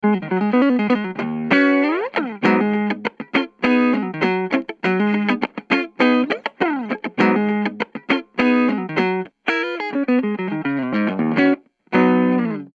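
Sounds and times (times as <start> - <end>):
Ibanez Challenger guitar through Micro Terror amplifier and PPC108 cabinet: 0.0 - 12.7.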